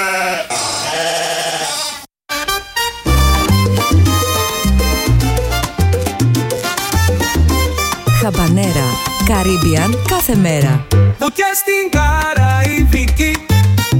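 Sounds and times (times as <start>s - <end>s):
sheep bleating: 0.0s - 2.1s
upbeat music with a heavy punchy bass beat: 3.0s - 13.9s
speech: 9.4s - 13.9s.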